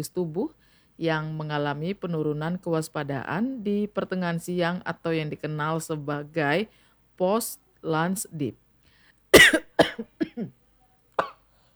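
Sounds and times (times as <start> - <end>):
speech: 0.0 - 8.6, 9.4 - 10.6
person coughing: 9.4 - 10.5, 11.2 - 11.4.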